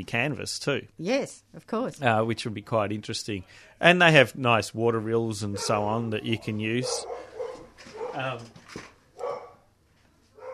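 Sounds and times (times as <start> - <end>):
speech: 0.0 - 8.9
Labrador dog barking: 5.5 - 8.4, 9.2 - 9.6, 10.4 - 10.5.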